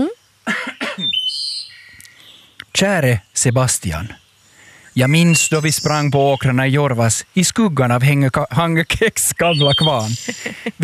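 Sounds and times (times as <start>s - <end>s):
throat clearing: 0.5s - 1.1s
speech: 2.8s - 4.2s, 5.0s - 10.8s
laughter: 9.8s - 10.8s.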